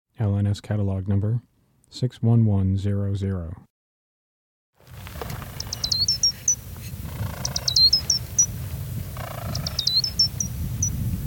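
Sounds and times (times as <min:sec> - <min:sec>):
speech: 0:00.2 - 0:03.7
Gray's lark calls of thin high whistled notes: 0:05.5 - 0:08.6, 0:09.2 - 0:11.0.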